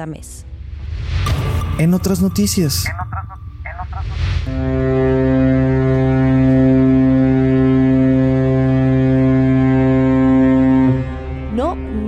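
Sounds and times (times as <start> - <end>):
speech: 0.0 - 0.5, 1.8 - 3.1, 4.4 - 5.4
deep loud cargo ship horn blast: 4.4 - 12.0.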